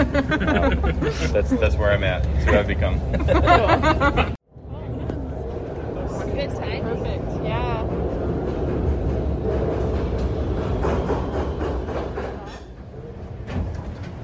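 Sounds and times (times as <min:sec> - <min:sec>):
laughter: 0:00.0 - 0:04.4
subway train rumbling into the station: 0:00.0 - 0:14.2
speech: 0:00.2 - 0:04.4.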